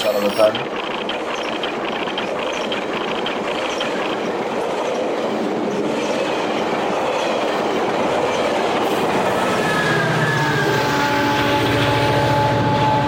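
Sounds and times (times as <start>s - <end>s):
train rolling on rails: 0.0s - 13.0s
speech: 0.2s - 1.0s
high metallic squeal from train wheels: 8.3s - 12.8s.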